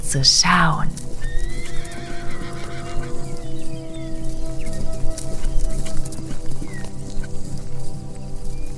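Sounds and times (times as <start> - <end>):
hooves clip-clopping: 0.0 - 8.7
speech: 0.1 - 1.1
mare whinnying: 1.2 - 3.6.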